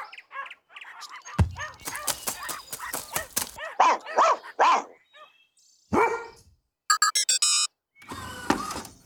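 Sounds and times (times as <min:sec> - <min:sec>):
several dogs barking with deep woofs and high yips: 0:00.0 - 0:06.4.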